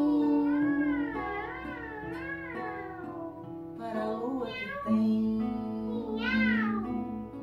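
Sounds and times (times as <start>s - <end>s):
cat meowing: 0.2s - 3.5s, 4.4s - 5.1s, 5.9s - 7.1s.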